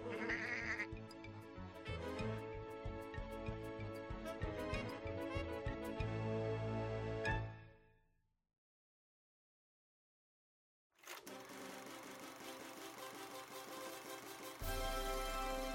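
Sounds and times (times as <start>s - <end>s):
sheep-like bleating: 0.0s - 1.0s
lively bouncy polka music with a thumping beat: 0.0s - 7.7s, 11.3s - 15.7s.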